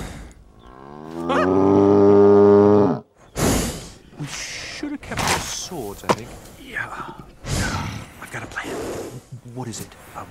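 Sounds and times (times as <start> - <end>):
bull chasing people bellowing: 0.7 - 3.0
speech: 9.6 - 10.3.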